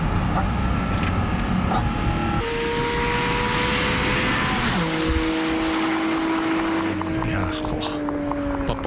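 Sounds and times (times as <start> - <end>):
Porsche 718 GT4 RS Cayman sports car engine revving: 0.2 - 8.8.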